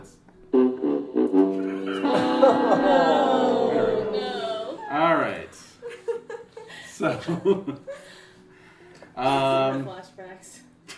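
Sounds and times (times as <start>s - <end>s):
air horn sound effect for a fumble: 0.5s - 2.7s
laughter: 1.6s - 8.0s
speech: 7.2s - 7.9s, 9.2s - 10.0s.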